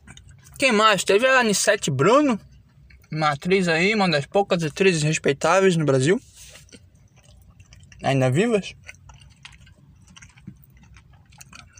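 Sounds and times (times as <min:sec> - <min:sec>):
person chewing food with wet crunchy mouth clicks: 0:00.0 - 0:00.6, 0:02.4 - 0:03.1, 0:06.3 - 0:11.7
speech: 0:00.6 - 0:02.5, 0:03.1 - 0:06.8, 0:08.0 - 0:08.9.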